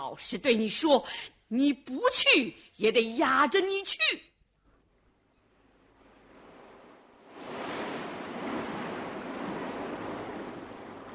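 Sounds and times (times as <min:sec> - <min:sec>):
speech: 0:00.1 - 0:04.3
ocean surf and breaking waves: 0:05.8 - 0:11.1.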